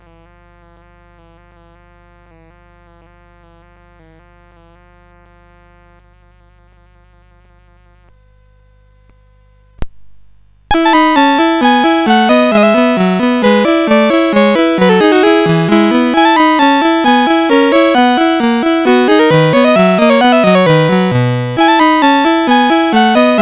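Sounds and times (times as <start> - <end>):
polonaise on a sound chip: 10.7 - 23.4.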